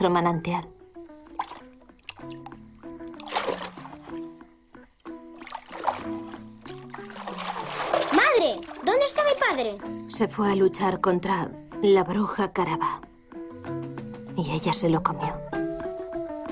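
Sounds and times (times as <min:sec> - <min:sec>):
speech: 0:00.0 - 0:00.8, 0:08.9 - 0:13.0, 0:14.5 - 0:15.4
water splashing: 0:01.3 - 0:04.4, 0:05.1 - 0:09.8.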